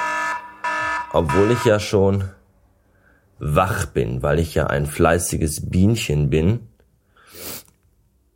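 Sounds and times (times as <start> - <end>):
electronic alarm clock beeps: 0.0 - 2.0
speech: 1.1 - 2.4, 3.4 - 6.7.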